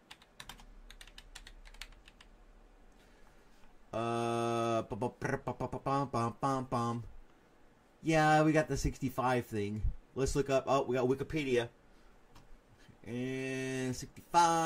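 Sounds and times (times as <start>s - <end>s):
typing on a computer keyboard: 0.0s - 2.3s
speech: 4.0s - 7.2s, 8.0s - 11.8s, 13.0s - 14.6s.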